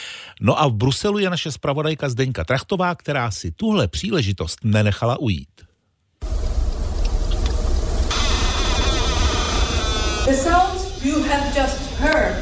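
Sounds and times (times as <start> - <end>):
speech: 0.4 - 5.7, 10.3 - 12.4
dense continuous crackling hiss of a melting glacier: 6.2 - 12.3
steady high ringing tone: 8.1 - 11.7.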